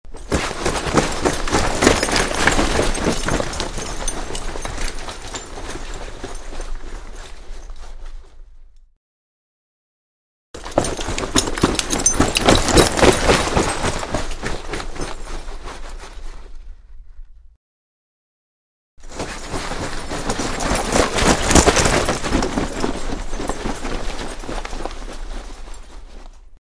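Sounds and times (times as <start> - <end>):
running footsteps: 0.1 - 8.4, 10.6 - 16.5, 19.0 - 26.6
rustling: 0.1 - 8.8, 10.6 - 17.5, 19.0 - 26.6.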